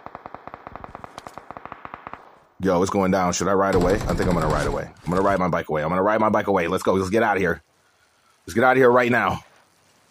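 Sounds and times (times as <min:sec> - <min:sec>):
automatic-weapon gunfire in a video game: 0:00.0 - 0:02.3, 0:03.7 - 0:04.8
speech: 0:02.6 - 0:07.7, 0:08.5 - 0:09.5.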